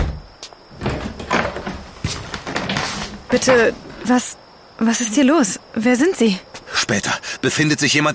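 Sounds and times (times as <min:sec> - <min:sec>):
door being opened: 0:00.0 - 0:04.1
speech: 0:03.3 - 0:08.1.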